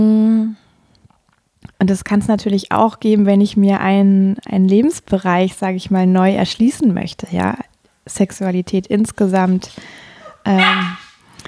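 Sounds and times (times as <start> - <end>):
speech: 1.8 - 11.0
dog bark or yelp: 10.2 - 11.2.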